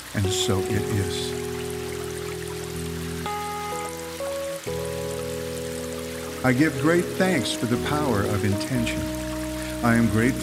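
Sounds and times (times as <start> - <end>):
rain: 0.0 - 10.4
speech: 0.1 - 1.4, 6.4 - 9.2, 9.8 - 10.4
sustained slowly shifting synth chords: 0.2 - 10.4.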